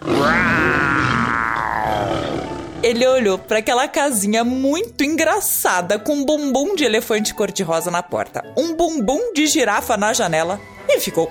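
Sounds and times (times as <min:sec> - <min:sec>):
lion roaring: 0:00.0 - 0:03.0
speech: 0:02.9 - 0:11.2.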